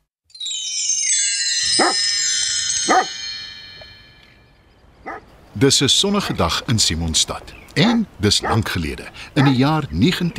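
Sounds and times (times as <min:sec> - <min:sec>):
speech: 0:01.8 - 0:02.2, 0:02.8 - 0:03.2, 0:05.0 - 0:10.3
large dog barking: 0:07.8 - 0:08.7, 0:09.4 - 0:09.6.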